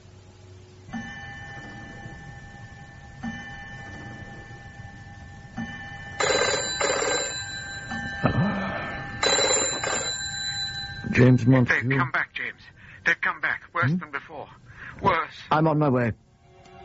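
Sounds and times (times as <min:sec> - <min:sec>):
telephone ringing with a metallic trill: 0:00.9 - 0:12.1
speech: 0:11.2 - 0:12.2, 0:13.8 - 0:14.6, 0:15.3 - 0:16.2.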